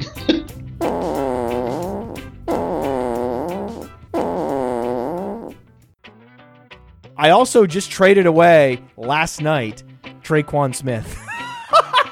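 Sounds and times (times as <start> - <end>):
person blowing raspberries imitating farts: 0.8 - 5.6
speech: 7.2 - 11.3
laughter: 11.2 - 12.1.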